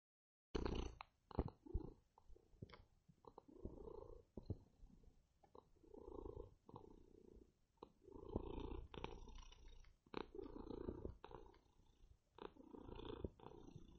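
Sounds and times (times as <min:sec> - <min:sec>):
male domestic cat purring: 0:00.6 - 0:13.9.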